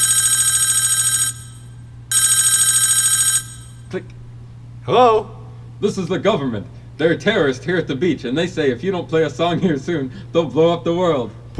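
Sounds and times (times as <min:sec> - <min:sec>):
telephone ringing with a bright warbling electronic tone: 0:00.0 - 0:03.9
speech: 0:03.9 - 0:04.2, 0:04.8 - 0:11.5.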